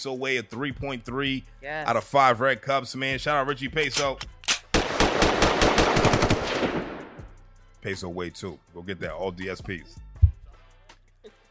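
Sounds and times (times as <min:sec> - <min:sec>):
speech: 0:00.0 - 0:04.4, 0:07.8 - 0:10.0
gunfire echo: 0:04.0 - 0:07.3
rapid gunfire barrage: 0:04.7 - 0:07.2.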